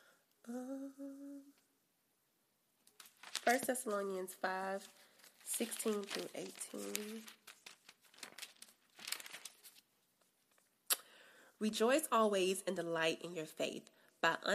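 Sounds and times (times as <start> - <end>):
person humming or murmuring wordlessly: 0.4 - 1.6
sheet of paper rustling and crinkling: 2.9 - 10.7
speech: 3.5 - 7.4, 11.6 - 14.5.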